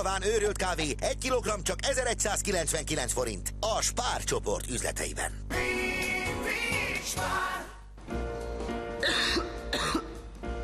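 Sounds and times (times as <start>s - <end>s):
speech: 0.0s - 5.9s, 7.0s - 8.2s
steady low hum: 0.0s - 10.6s
person coughing: 9.0s - 10.2s
throat clearing: 9.0s - 10.2s.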